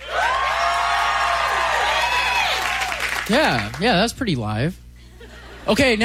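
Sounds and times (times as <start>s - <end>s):
large crowd cheering and whooping: 0.0s - 3.3s
dense roar of applause: 0.0s - 3.8s
speech: 3.3s - 4.8s, 5.6s - 6.0s.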